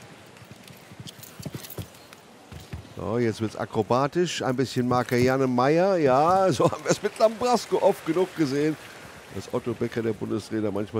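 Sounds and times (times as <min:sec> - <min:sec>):
horse hooves striking the ground at a show jumping event: 0:00.0 - 0:03.1
steady hiss: 0:00.0 - 0:10.9
speech: 0:03.0 - 0:10.9.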